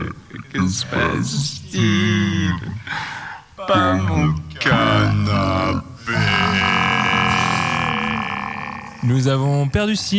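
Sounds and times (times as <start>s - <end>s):
person making a gurgling glottal croak: 0.0s - 2.9s, 5.3s - 9.4s
speech: 0.5s - 6.7s, 9.0s - 10.1s.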